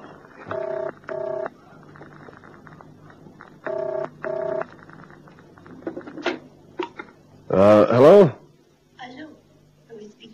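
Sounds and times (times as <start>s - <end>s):
touch-tone beeps of a phone being dialed: 3.7s - 4.6s
speech: 7.6s - 8.0s.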